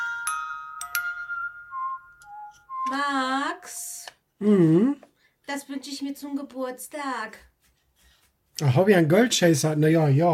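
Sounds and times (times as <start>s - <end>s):
bright metallic glockenspiel notes: 0.0s - 3.2s
speech: 2.8s - 7.5s, 8.6s - 10.3s.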